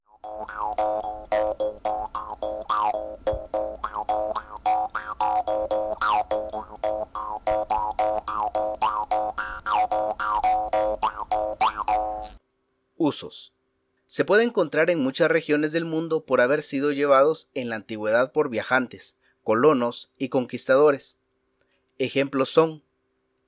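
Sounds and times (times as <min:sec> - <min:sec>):
jaw harp played in a low monotone drone: 0:00.1 - 0:12.4
speech: 0:00.4 - 0:01.9, 0:13.1 - 0:21.2, 0:22.0 - 0:22.9.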